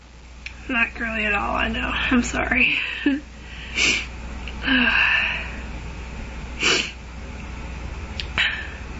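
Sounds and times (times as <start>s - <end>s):
speech: 0.7s - 4.0s, 4.6s - 5.1s
wheezy gasping breaths from a stuffed-up person: 2.7s - 5.7s, 6.6s - 7.0s.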